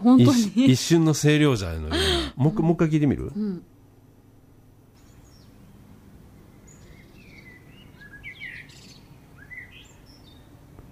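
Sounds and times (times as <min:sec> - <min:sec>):
speech: 0:00.0 - 0:03.7
bright bird song with chirps and whistled notes: 0:05.0 - 0:10.6.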